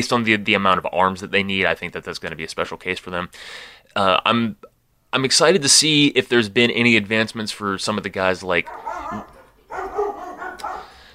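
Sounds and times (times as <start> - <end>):
speech: 0.0 - 10.0
dogs barking excitedly: 8.6 - 11.1
dogs' whiny yips: 8.7 - 10.9.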